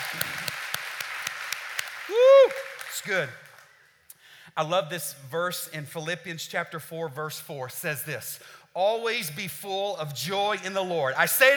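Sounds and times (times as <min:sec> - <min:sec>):
audience clapping and applauding: 0:00.0 - 0:03.9
speech: 0:03.0 - 0:03.4, 0:04.6 - 0:11.5.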